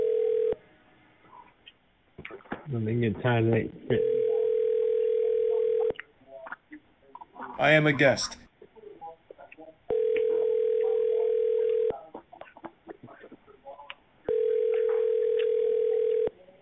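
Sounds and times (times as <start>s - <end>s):
ringback tones through a phone line as a call rings unanswered: 0.0s - 0.6s, 3.9s - 5.9s, 9.9s - 11.9s, 14.3s - 16.3s
faint noise: 0.0s - 16.6s
speech: 2.7s - 4.2s, 7.6s - 8.5s.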